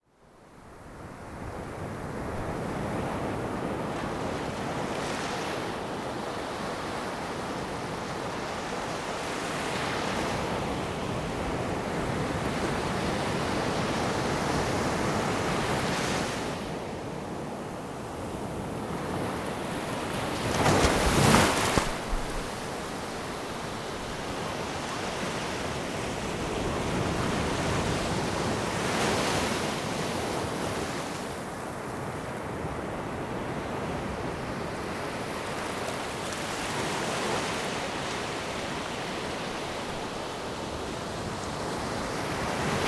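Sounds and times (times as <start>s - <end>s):
ocean: 0.0s - 42.8s.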